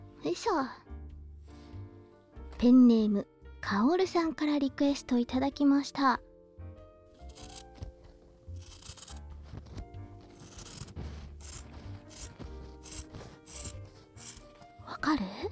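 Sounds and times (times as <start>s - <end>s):
speech: 0.2s - 0.9s, 2.6s - 6.3s
scissors cutting through cloth: 7.2s - 14.8s.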